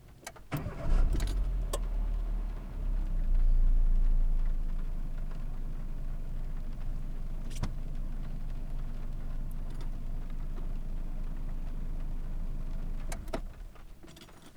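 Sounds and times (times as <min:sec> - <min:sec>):
car engine starting and stopping: 0:00.3 - 0:14.5.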